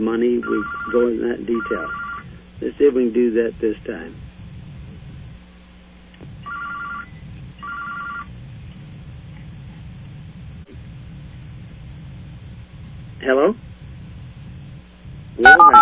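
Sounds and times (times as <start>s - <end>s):
speech: 0.0s - 4.3s
low rumbling hum: 0.0s - 15.8s
telephone dial tone through a line: 0.4s - 2.2s, 6.5s - 8.3s.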